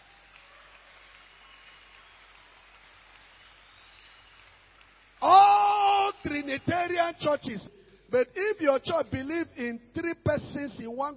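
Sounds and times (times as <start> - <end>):
audience clapping hands: 0.0 - 7.4
speech: 6.2 - 11.1.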